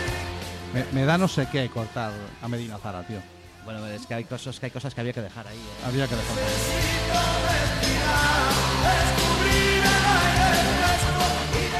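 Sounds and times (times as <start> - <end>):
full-band song played on air: 0.0 - 2.1, 5.6 - 11.7
speech: 0.7 - 9.7.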